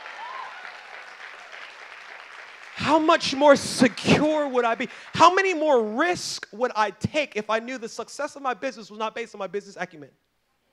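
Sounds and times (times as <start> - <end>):
audience golf clap: 0.0 - 5.6
speech: 2.8 - 10.3.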